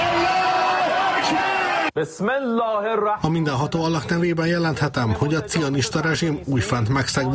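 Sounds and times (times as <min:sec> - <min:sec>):
large crowd cheering and shouting in celebration in the streets: 0:00.0 - 0:02.0
speech: 0:02.0 - 0:07.3.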